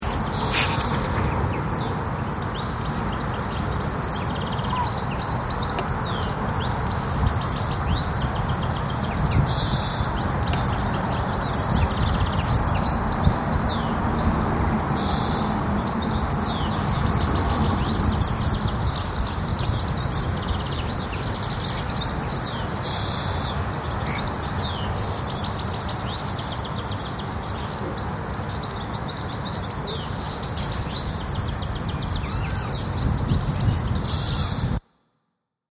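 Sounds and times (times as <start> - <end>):
goldfinch singing: 0.0 - 34.8.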